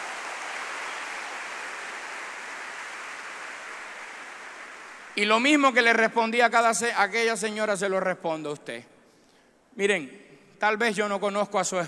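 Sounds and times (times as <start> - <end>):
audience applause: 0.0 - 5.2
speech: 5.2 - 8.9, 9.8 - 11.8.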